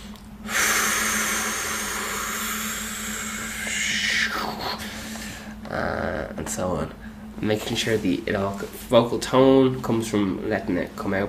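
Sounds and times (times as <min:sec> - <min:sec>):
steady low hum: 0:00.0 - 0:11.2
long deep diaphragm breath: 0:00.4 - 0:05.6
speech: 0:05.7 - 0:11.2.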